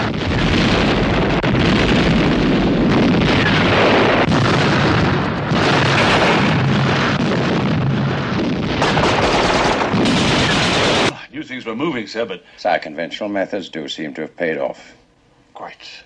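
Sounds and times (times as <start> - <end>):
massive roar of a fuel dump blowing up: 0.0 - 11.1
rapid gunfire: 0.0 - 11.1
speech: 11.8 - 15.0, 15.6 - 16.0.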